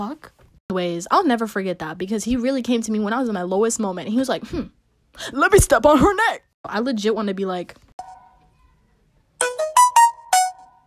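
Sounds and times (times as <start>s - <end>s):
speech: 0.0s - 7.9s
iPhone ringtone with chiming notes: 9.4s - 10.8s.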